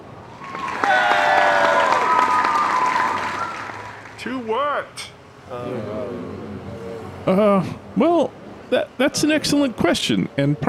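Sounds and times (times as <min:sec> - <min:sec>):
crowd cheering: 0:00.0 - 0:04.5
high whistles from crowd: 0:00.4 - 0:04.0
crowd applauding: 0:00.4 - 0:04.3
speech: 0:04.2 - 0:06.4, 0:07.2 - 0:10.6.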